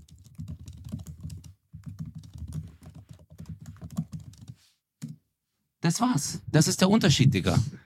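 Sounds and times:
ten-finger touch typing on a computer keyboard: 0.0 - 5.2
speech: 5.9 - 7.8.

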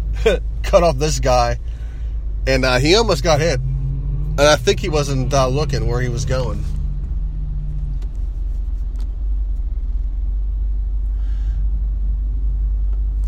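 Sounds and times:
car engine and tyre road rumble heard from inside the vehicle: 0.0 - 13.2
speech: 0.2 - 1.7, 2.4 - 3.7, 4.4 - 6.8.

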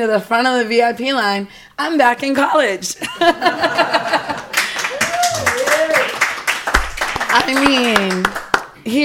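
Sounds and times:
speech: 0.0 - 4.2, 7.3 - 9.0
laughter: 3.0 - 5.7
crowd applause: 3.7 - 8.7.

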